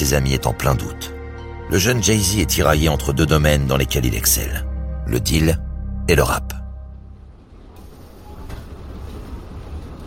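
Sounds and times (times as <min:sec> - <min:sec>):
speech: 0:00.0 - 0:06.6
commuter train rolling along the rails: 0:07.2 - 0:10.0.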